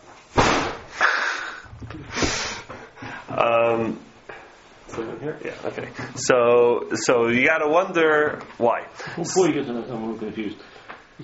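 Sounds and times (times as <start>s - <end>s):
door slamming shut: 0.4s - 0.9s
speech: 3.4s - 4.1s, 5.0s - 11.2s.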